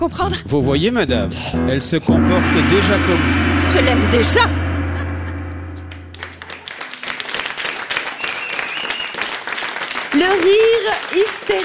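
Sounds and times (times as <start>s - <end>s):
speech: 0.0s - 4.6s, 10.3s - 11.6s
sustained low musical chord: 1.6s - 6.8s
audience applause for an improvised theatre performance: 6.4s - 11.6s.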